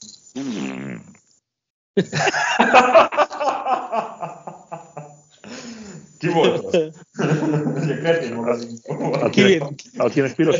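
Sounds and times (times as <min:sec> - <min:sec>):
speech: 0:00.0 - 0:01.1, 0:02.0 - 0:03.0, 0:08.3 - 0:10.5
drawn-out buzzy fart: 0:00.4 - 0:01.3
several people laughing loudly: 0:02.0 - 0:05.2, 0:05.8 - 0:10.5.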